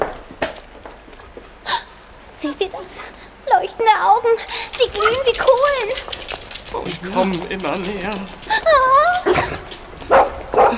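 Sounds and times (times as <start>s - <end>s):
speech: 2.4s - 9.6s
small puppies yapping: 4.5s - 10.7s.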